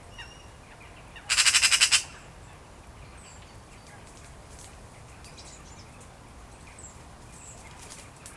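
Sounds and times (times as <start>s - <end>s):
Eurasian magpie Pica pica rattling chatter: 1.3s - 2.2s.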